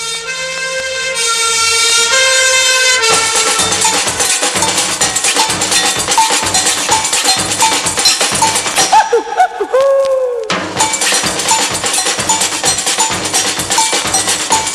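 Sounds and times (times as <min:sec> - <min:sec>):
fire engine siren wailing: 0:00.0 - 0:03.8
busy music-like accompaniment: 0:00.0 - 0:09.8, 0:10.5 - 0:14.7
bell clanging: 0:03.1 - 0:09.0, 0:10.8 - 0:14.7
laughter: 0:08.8 - 0:10.5.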